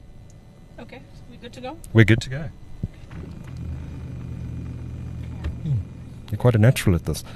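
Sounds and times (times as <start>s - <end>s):
speech: 0.8s - 2.6s, 5.6s - 7.3s
automatic car pulling out of a solar garage: 2.0s - 7.3s.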